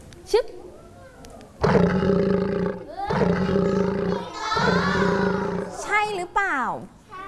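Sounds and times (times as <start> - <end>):
speech: 0.3 - 0.6
lion roaring and growling: 1.6 - 5.8.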